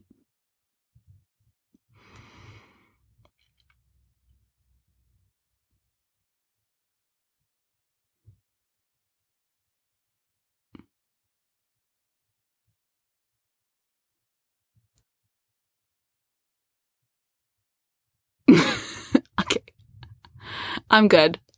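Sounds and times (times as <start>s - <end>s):
person breathing during a breathing exercise: 1.9s - 3.1s, 20.3s - 20.9s
speech: 20.9s - 21.5s.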